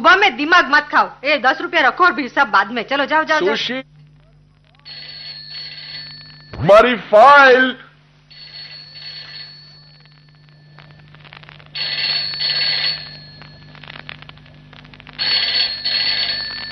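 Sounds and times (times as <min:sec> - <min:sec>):
low steady hum: 0:00.0 - 0:16.7
speech: 0:00.1 - 0:03.9, 0:06.6 - 0:07.8
telephone ringing: 0:04.8 - 0:06.9, 0:08.3 - 0:16.7.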